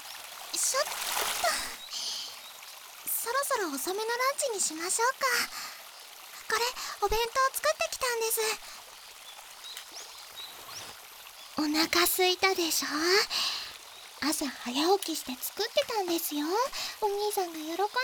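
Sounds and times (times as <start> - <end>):
shallow river flowing and splashing around feet: 0.5 - 2.4
brief louder water splash: 0.6 - 2.2
speech: 3.6 - 5.6, 7.0 - 8.7, 11.6 - 13.5, 14.2 - 18.0.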